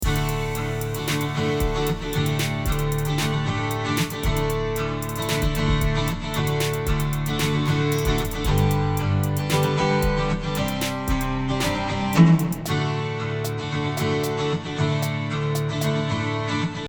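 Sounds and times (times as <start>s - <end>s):
strummed guitar: 0.0s - 16.8s.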